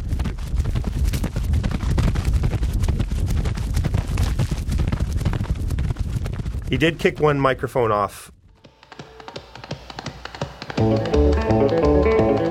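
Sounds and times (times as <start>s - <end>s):
horse hooves trotting around in a loop: 0.0s - 12.4s
speech: 6.7s - 8.4s.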